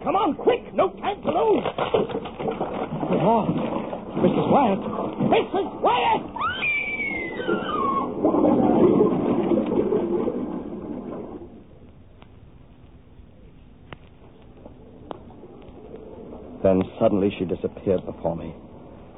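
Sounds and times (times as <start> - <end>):
water gushing down a passageway: 0.0 - 11.7
thin falling whine: 3.2 - 17.0
speech: 4.6 - 6.8, 16.7 - 18.7.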